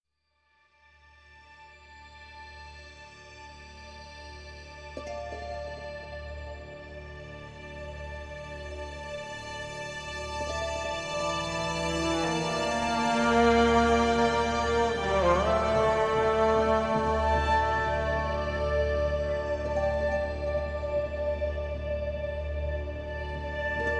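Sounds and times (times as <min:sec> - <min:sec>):
haunting dramatic strings: 0:06.8 - 0:23.9.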